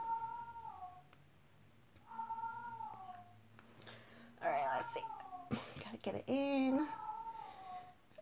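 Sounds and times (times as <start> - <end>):
domestic cat meowing: 0.0 - 1.0, 2.0 - 3.3, 4.4 - 5.5, 6.8 - 7.9
speech: 6.0 - 7.0.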